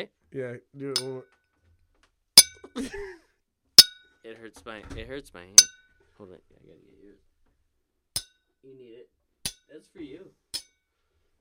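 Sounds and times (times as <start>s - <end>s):
speech: 0.0s - 1.4s, 2.8s - 3.2s, 4.2s - 7.3s, 8.6s - 10.4s
glasses clinking in a toast: 2.4s - 2.8s, 3.8s - 4.1s, 5.6s - 5.9s.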